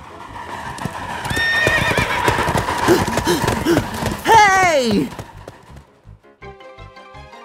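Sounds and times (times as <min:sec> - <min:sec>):
horse hooves clip-clopping as the horse runs alongside a train: 0:00.4 - 0:06.2
horse neighing: 0:01.3 - 0:03.1
speech: 0:02.9 - 0:03.9.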